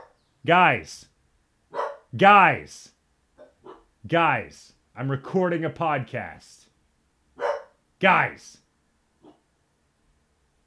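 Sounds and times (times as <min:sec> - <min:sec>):
speech: 0:00.4 - 0:01.1, 0:02.1 - 0:03.0, 0:04.0 - 0:06.7, 0:08.0 - 0:08.6
dogs barking: 0:01.7 - 0:02.1, 0:03.4 - 0:03.9, 0:07.4 - 0:07.8.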